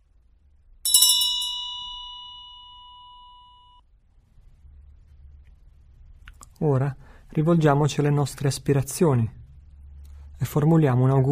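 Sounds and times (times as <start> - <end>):
room ambience: 0.0 - 11.2
meditation bell ringing: 0.8 - 3.8
speech: 6.6 - 9.4, 10.4 - 11.2.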